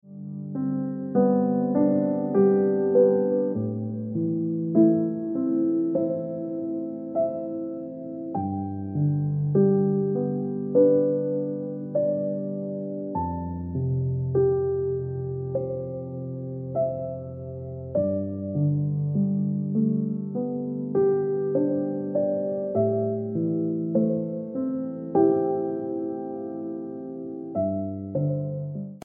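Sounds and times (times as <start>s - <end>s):
piano ringtone music: 0.2s - 29.0s.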